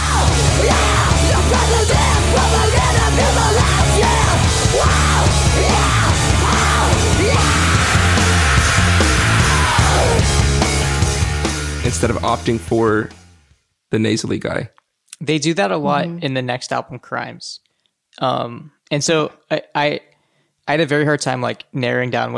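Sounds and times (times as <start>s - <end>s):
harsh screamed vocals from two layered voices: 0.0s - 10.3s
dense heavy band music: 0.0s - 13.4s
speech: 12.0s - 13.2s, 13.9s - 17.6s, 18.2s - 20.1s, 20.7s - 22.3s.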